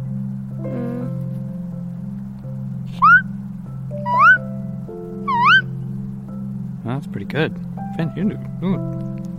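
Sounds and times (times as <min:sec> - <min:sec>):
steady low hum: 0:00.0 - 0:09.3
person imitating a squeaky chirping bird call: 0:00.7 - 0:01.2, 0:03.0 - 0:03.2, 0:04.0 - 0:04.4, 0:05.3 - 0:05.6
speech: 0:07.1 - 0:09.3.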